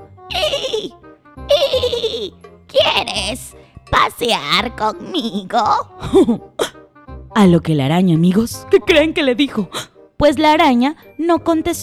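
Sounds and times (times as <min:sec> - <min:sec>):
voice imitating a horse neighing: 0:00.3 - 0:06.8
speech: 0:00.8 - 0:01.1, 0:02.2 - 0:06.8, 0:07.4 - 0:11.8
laughter: 0:01.5 - 0:02.3.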